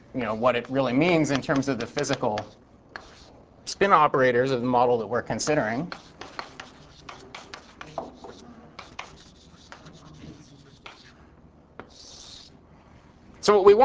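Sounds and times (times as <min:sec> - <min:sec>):
speech: 0:00.2 - 0:02.6, 0:03.8 - 0:06.1, 0:13.5 - 0:13.8
eraser rubbing writing off a board during a physics lecture: 0:00.2 - 0:03.4, 0:05.4 - 0:11.2, 0:11.8 - 0:12.6.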